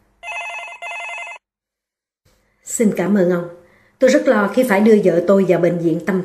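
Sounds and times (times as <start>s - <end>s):
telephone ringing in a doctor's office: 0.2s - 1.5s
speech: 2.8s - 6.2s.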